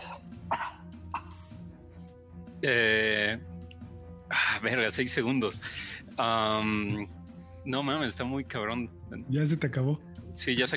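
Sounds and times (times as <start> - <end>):
voice imitating a bound creature coughing: 0.1 - 1.5
speech: 2.6 - 3.5, 4.6 - 10.7.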